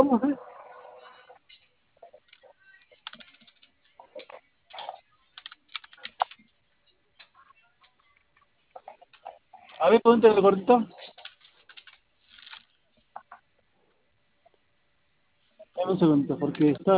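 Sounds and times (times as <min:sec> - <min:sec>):
speech: 0:00.0 - 0:00.5, 0:09.8 - 0:11.0, 0:15.9 - 0:16.9
typing on a computer keyboard: 0:03.0 - 0:03.8, 0:05.3 - 0:06.4, 0:11.2 - 0:12.6.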